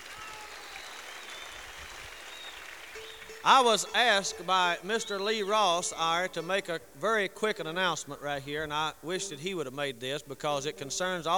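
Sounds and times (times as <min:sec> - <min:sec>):
audience applauding: 0:00.0 - 0:05.9
speech: 0:03.4 - 0:11.3.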